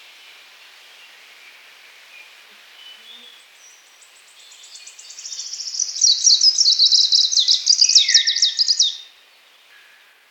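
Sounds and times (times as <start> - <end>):
greenish warbler song, fast high tinkling phrase: 3.4 - 9.9.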